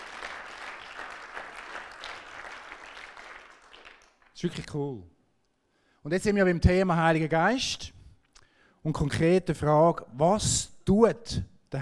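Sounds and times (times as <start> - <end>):
crowd applauding: 0.0 - 4.4
speech: 4.4 - 5.2, 6.0 - 7.9, 8.8 - 11.8.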